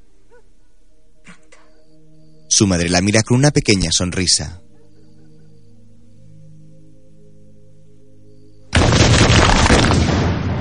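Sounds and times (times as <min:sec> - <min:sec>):
speech: 0:02.6 - 0:04.7
explosions blasting a trench in a mine: 0:08.8 - 0:10.5.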